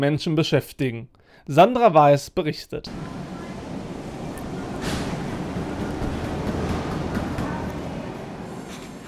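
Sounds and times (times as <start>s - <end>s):
speech: 0.0s - 3.2s
running machinery in an avocado export packing plant: 2.9s - 9.0s
clacks and knocks in an avocado export packing plant: 4.4s - 9.0s.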